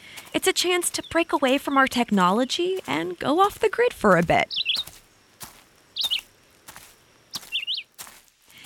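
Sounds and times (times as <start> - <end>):
songbirds singing in the treetops: 0.0 - 8.6
speech: 0.4 - 4.8
soft crunching taps on a hike: 2.8 - 8.6.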